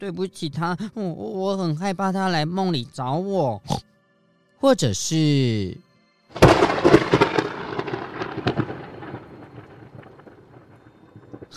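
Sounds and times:
speech: 0.0s - 3.9s, 4.6s - 6.8s
thunder with a sharp crackling onset and long loud rumble: 6.4s - 11.5s.

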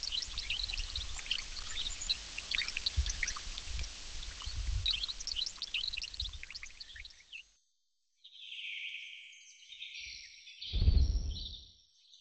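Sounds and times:
dense chatter of high bird calls and chirps in a rainforest: 0.0s - 7.5s
loud low whooshing thump: 10.8s - 11.6s
low rumble: 10.8s - 11.6s.

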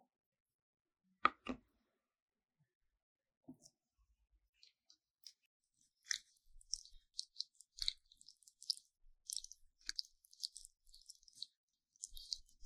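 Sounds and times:
sticky gel rubbing and squelching during an ear massage: 4.6s - 12.6s.

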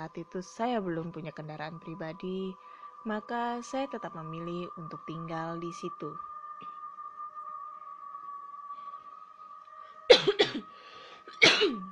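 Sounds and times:
speech: 0.0s - 6.3s
steady electronic hum: 0.0s - 11.9s
person coughing: 10.1s - 10.7s, 11.3s - 11.9s.

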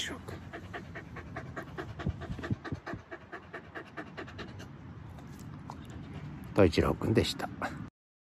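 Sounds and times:
speech: 0.0s - 0.3s, 6.6s - 7.8s
Hokkaido dog panting: 0.0s - 6.6s.

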